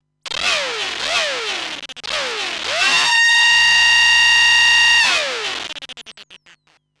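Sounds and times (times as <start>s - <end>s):
metal drill self-oscillating on analogue systems: 0.3s - 6.6s.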